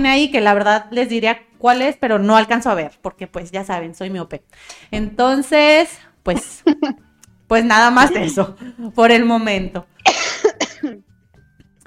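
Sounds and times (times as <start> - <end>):
speech: 0.0 - 10.2
laughter: 6.6 - 7.0
person coughing harshly: 10.0 - 11.0.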